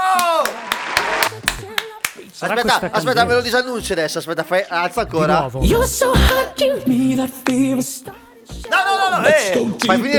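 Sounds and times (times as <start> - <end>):
crisp hands clapping in a steady rhythm: 0.1 - 2.3
speech: 2.4 - 10.1.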